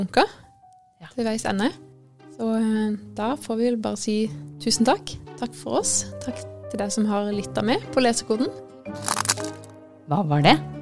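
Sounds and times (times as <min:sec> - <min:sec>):
speech: 0:00.0 - 0:00.4, 0:01.0 - 0:09.2, 0:10.1 - 0:10.8
sharp cracking sound effect: 0:09.0 - 0:09.8.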